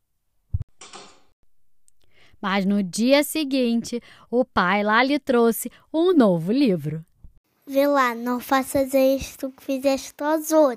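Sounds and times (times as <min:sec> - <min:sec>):
door creaking open: 0:00.8 - 0:01.3
speech: 0:02.4 - 0:07.1, 0:07.7 - 0:10.7.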